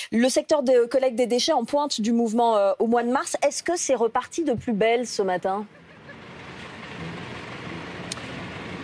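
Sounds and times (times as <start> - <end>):
speech: 0.1 - 5.8
outdoor traffic noise: 3.4 - 8.8
truck engine rumbling as it pulls out of a site: 4.7 - 8.8.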